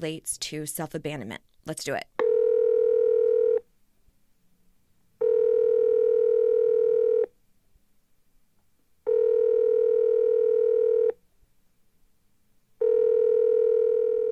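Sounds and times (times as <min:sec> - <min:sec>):
speech: 0:00.0 - 0:02.1
telephone ringback tone as a call is placed: 0:02.2 - 0:03.6, 0:05.2 - 0:07.3, 0:09.1 - 0:11.1, 0:12.8 - 0:14.2.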